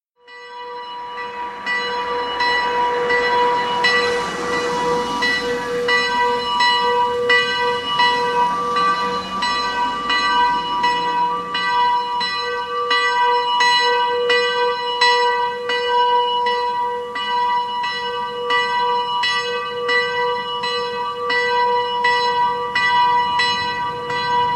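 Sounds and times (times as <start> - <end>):
town hall bell ringing: 0.2 - 24.5.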